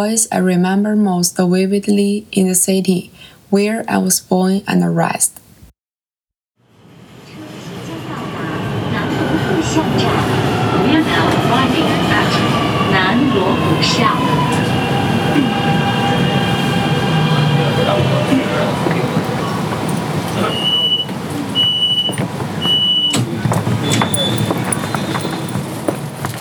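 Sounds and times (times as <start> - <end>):
speech: 0.0 - 5.4, 9.8 - 12.3, 13.4 - 14.6
subway train pulling into a station in Beijing: 6.6 - 26.3
voices: 7.2 - 25.6.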